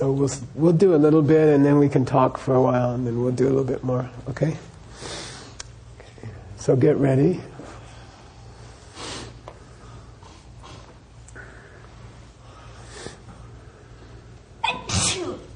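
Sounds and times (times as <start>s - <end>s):
speech: 0.0s - 5.2s, 6.6s - 7.6s
faint low hum: 0.0s - 15.5s
person sneezing after a breathy inhale: 14.6s - 15.5s.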